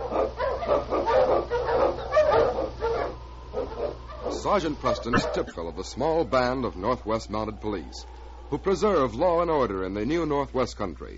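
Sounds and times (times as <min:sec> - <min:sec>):
pack of sled dogs barking and yelping: 0:00.0 - 0:05.7
speech: 0:04.4 - 0:11.1.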